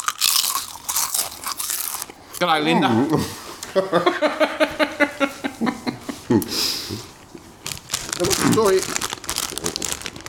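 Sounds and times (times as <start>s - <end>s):
crunching of Twiglets British snack sticks: 0.0s - 2.5s, 7.6s - 10.2s
speech: 2.4s - 5.7s, 6.3s - 7.1s, 8.2s - 9.0s
laughter: 2.9s - 7.0s.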